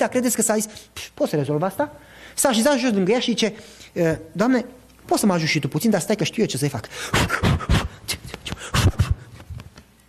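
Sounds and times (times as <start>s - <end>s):
speech: 0.0s - 7.7s
voice imitating heavy breathing and panting: 7.0s - 9.3s.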